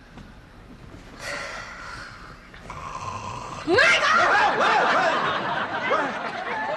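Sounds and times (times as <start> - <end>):
man snoring while asleep lying on his side: 2.7 - 3.8
speech: 3.7 - 3.9
laughter: 3.8 - 6.7.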